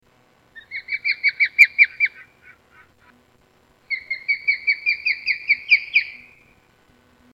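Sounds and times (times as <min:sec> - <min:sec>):
bald eagles chirping: 0:00.6 - 0:03.1, 0:03.9 - 0:06.6.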